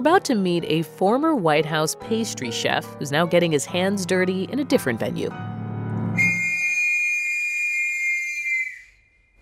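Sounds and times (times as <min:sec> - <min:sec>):
speech: 0:00.0 - 0:05.5
loud shrill factory whistle blowing: 0:06.2 - 0:09.1.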